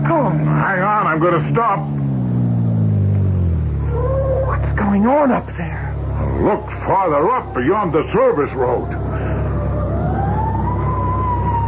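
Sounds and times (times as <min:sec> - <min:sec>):
low fire engine rumble: 0:00.0 - 0:11.6
speech: 0:01.2 - 0:02.0, 0:04.9 - 0:09.1
fire engine siren wailing on a road near a burning sanitarium: 0:03.6 - 0:11.6.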